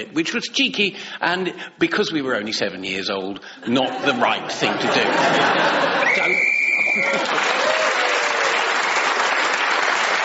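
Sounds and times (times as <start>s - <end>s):
speech: 0.0s - 7.7s
laughter: 3.7s - 7.9s
crowd applauding: 5.5s - 10.2s
whistle blast blown to end a round: 6.0s - 7.2s.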